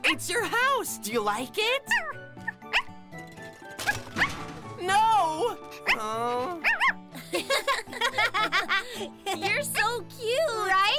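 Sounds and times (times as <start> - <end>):
speech: 0.1 - 2.3, 4.8 - 6.7, 7.3 - 10.9
dog barking in short sharp bursts: 2.7 - 3.0
laughter: 7.2 - 9.6.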